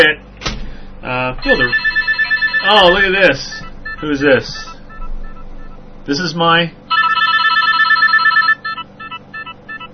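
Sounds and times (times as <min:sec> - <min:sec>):
speech: 0:00.0 - 0:00.3, 0:01.0 - 0:01.9, 0:02.6 - 0:04.7, 0:06.1 - 0:06.8
Nokia mobile phone ringtone: 0:01.4 - 0:05.7, 0:06.9 - 0:09.9.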